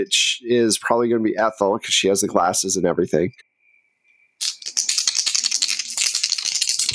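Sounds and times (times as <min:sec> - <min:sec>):
speech: 0:00.0 - 0:03.5
dice rattling in a cup or hand before a roll: 0:04.4 - 0:06.9.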